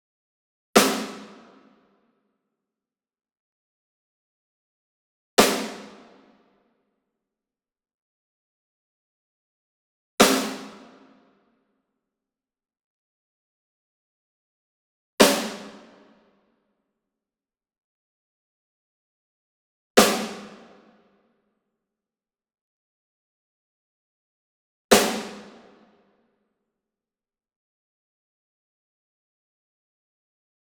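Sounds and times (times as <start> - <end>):
Pearl High Tension snare drum rim hit, medium: 0.8 - 1.5, 5.4 - 6.0, 10.2 - 10.8, 15.2 - 16.0, 20.0 - 20.7, 25.0 - 25.6.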